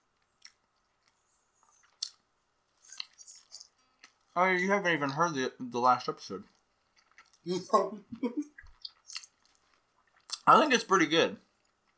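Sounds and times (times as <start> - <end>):
wet chewing and crunching: 0.0 - 4.4, 6.4 - 7.5, 8.4 - 10.5, 11.4 - 11.9
speech: 4.4 - 6.6, 7.4 - 8.6, 10.5 - 11.5.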